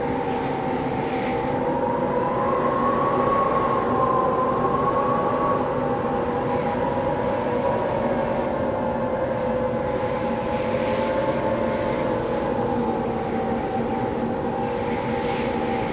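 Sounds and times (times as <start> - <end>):
mountain wind through a window: 0.0 - 15.9.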